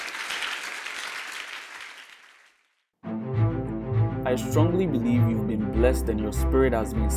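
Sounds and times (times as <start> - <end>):
crowd clapping hands in applause: 0.0 - 2.8
speech: 4.3 - 7.1.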